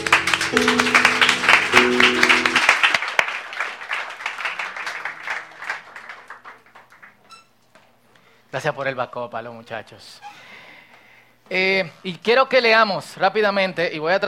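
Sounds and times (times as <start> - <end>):
sustained musical tones: 0.0 - 3.0
audience applauding: 0.0 - 7.3
speech: 8.6 - 10.3, 11.5 - 14.2.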